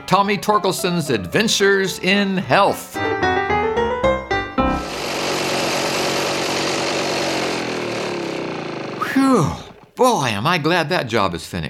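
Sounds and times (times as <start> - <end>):
speech: 0.1 - 3.2, 9.4 - 11.6
lawn mower engine roaring as a lawn is mowed in summer: 4.6 - 10.0.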